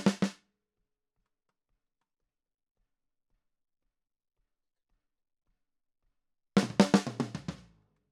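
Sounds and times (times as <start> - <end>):
snare drum: 0.0 - 0.4, 6.6 - 7.7.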